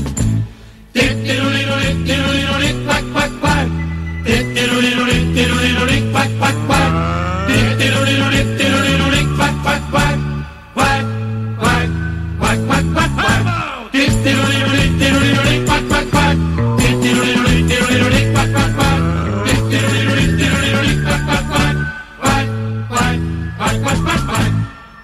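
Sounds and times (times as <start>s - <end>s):
steady bouncy accompaniment: 0.0s - 25.0s
person singing in Mallorcan Catalan: 1.0s - 25.0s.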